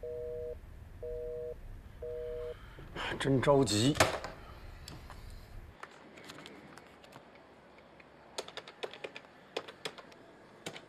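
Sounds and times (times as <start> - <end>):
telephone busy signal beeps while a call is placed: 0.0 - 2.6
speech: 3.1 - 4.2.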